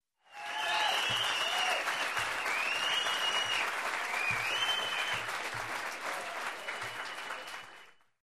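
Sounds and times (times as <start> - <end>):
close room applause: 0.2 - 8.2
people whistling: 0.6 - 5.4, 6.4 - 8.0.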